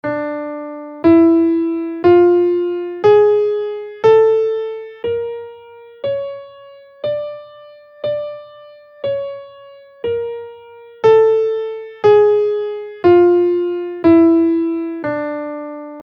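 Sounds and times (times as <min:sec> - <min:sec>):
double harmonic minor scale in Dm: 0:00.1 - 0:16.0.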